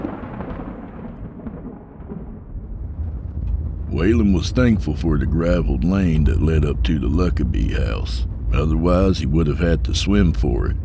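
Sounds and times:
thunder rumbling: 0.0s - 10.8s
faint rain-like hiss: 2.7s - 10.8s
speech: 4.0s - 10.8s.

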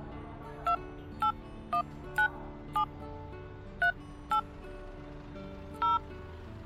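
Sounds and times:
mobile phone keypad dual-tone beeps entering a number at a bus terminal: 0.7s - 1.3s, 2.2s - 2.9s, 3.8s - 4.4s, 5.8s - 6.0s.

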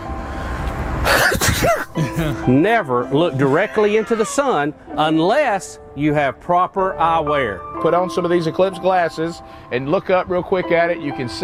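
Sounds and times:
person sneezing after glancing at the sun during a solar eclipse: 1.0s - 2.4s
speech: 1.6s - 11.4s.

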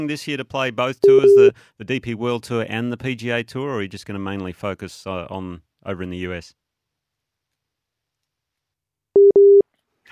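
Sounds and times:
speech: 0.0s - 6.6s
telephone busy tone after dropped call: 1.0s - 1.5s, 9.2s - 9.6s.

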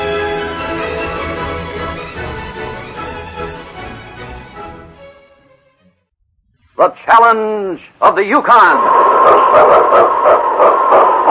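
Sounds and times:
speech: 6.8s - 11.1s
husky lead sled dog barking and yipping: 9.0s - 11.3s.

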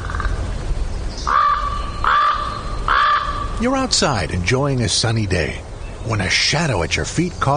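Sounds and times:
crow cawing: 0.0s - 0.4s, 1.2s - 3.6s
low steady outdoor rumble: 0.0s - 7.5s
speech: 3.6s - 7.5s.

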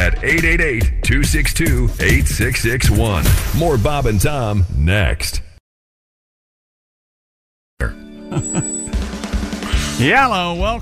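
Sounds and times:
speech: 0.2s - 5.5s, 7.8s - 8.8s, 10.0s - 10.8s
telephone ringing: 8.3s - 9.3s.

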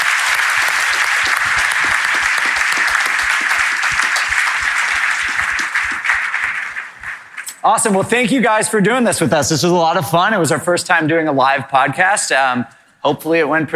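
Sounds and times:
audience applauding: 0.0s - 7.5s
speech: 7.6s - 13.7s.

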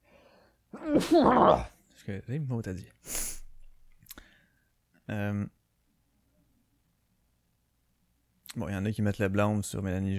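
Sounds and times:
person sneezing: 0.8s - 1.7s
speech: 0.8s - 3.2s, 5.1s - 5.6s, 8.5s - 10.1s.

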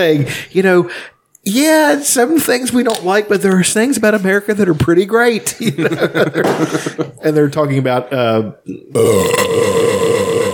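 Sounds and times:
speech: 0.0s - 9.8s
laughter: 5.5s - 7.2s
loud drawn-out burp: 8.7s - 10.5s.

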